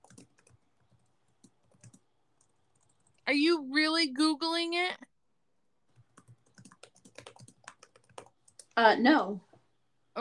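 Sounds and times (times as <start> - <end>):
typing on a computer keyboard: 0.0 - 3.2, 6.0 - 8.8
speech: 3.3 - 5.1, 8.8 - 9.5.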